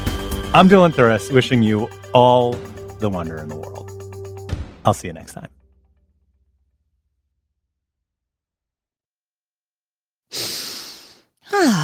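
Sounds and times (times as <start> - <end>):
speech: 0.5 - 3.7, 4.8 - 5.6, 11.5 - 11.8
deep inhale through the nose with a nasal strip: 10.3 - 11.3
voiced sigh: 10.3 - 11.8.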